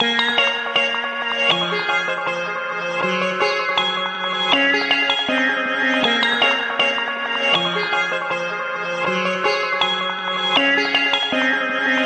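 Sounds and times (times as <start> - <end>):
pretty synth melody loop: 0.0 - 12.0.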